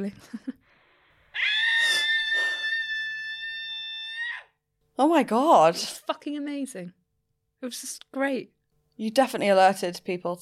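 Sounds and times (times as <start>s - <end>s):
speech: 0.0s - 0.5s, 5.0s - 7.0s, 7.6s - 10.3s
person screaming loudly outdoors: 1.4s - 4.5s.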